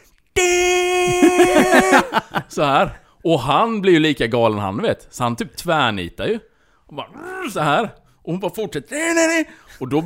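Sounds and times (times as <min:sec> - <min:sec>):
voice imitating a car horn: 0:00.4 - 0:02.0
laughter: 0:01.0 - 0:02.6
speech: 0:01.4 - 0:10.0.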